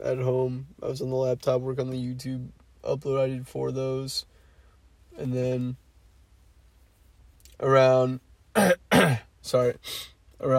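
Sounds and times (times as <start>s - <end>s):
speech: 0.0s - 4.4s, 5.2s - 5.8s, 7.6s - 10.5s
person clearing throat: 8.6s - 9.3s.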